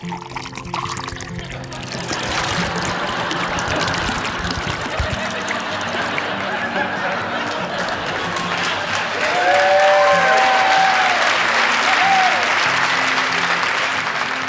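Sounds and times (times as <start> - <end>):
wine glugging and splashing into a glass: 0.0 - 6.6
laughter: 1.7 - 14.3.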